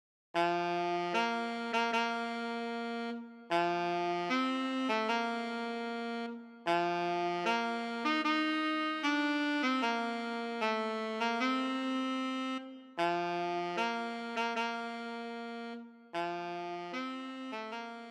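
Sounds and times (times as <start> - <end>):
solo alto saxophone playing a wedding march: 0.4 - 18.0.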